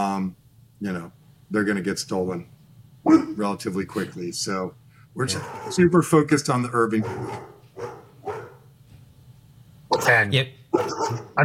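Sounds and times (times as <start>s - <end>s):
speech: 0.0s - 8.0s, 10.1s - 11.4s
dog barking: 5.3s - 5.9s, 7.0s - 8.7s, 10.7s - 11.4s.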